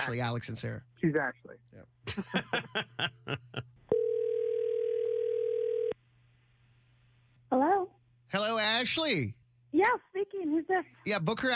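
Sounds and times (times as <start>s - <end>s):
speech: 0.0s - 3.7s, 7.5s - 11.5s
laughter: 2.1s - 3.8s
telephone dial tone: 3.9s - 6.0s.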